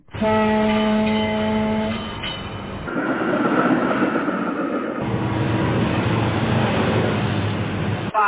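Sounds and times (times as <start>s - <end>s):
railway train passing: 0.0s - 8.1s
railway train whistle: 0.1s - 2.2s
speech: 0.2s - 0.7s.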